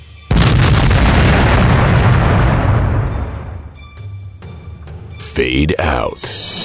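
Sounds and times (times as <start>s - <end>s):
chain reaction explosions as an aircraft plows into a laser gun emplacement: 0.3s - 3.7s
speech: 5.4s - 6.4s.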